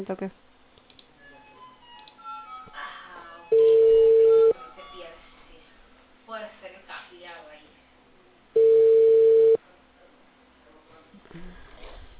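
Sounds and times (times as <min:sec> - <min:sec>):
outgoing phone call ringing tone: 0:03.5 - 0:04.6, 0:08.6 - 0:09.6.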